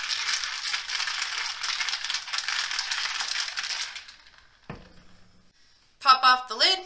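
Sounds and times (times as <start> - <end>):
ice rattling in a cocktail shaker being shaken: 0.0 - 4.7
speech: 6.3 - 6.8.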